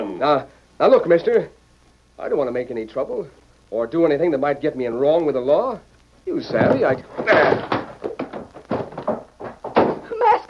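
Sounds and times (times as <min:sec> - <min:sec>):
speech: 0:00.2 - 0:01.6, 0:02.2 - 0:07.8
hurried footsteps running toward a door: 0:06.3 - 0:10.4
heavy wooden thumps and bangs of a chair thrown: 0:06.4 - 0:10.4.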